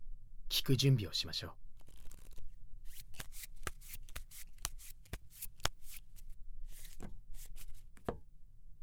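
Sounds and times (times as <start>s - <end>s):
speech: 0.6s - 1.7s
fortune-telling cards being shuffled: 1.8s - 8.2s.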